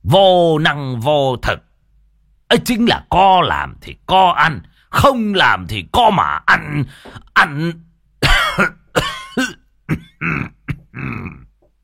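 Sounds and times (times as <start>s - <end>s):
speech: 0.1s - 1.7s, 2.5s - 7.9s, 8.6s - 9.6s
old man dry coughing while clutching his chest: 8.2s - 11.6s.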